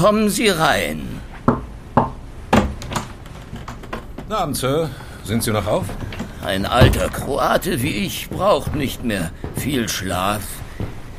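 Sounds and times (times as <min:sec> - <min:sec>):
speech: 0:00.0 - 0:01.1, 0:04.3 - 0:10.6
knocking on a door: 0:01.5 - 0:03.0, 0:06.8 - 0:07.2.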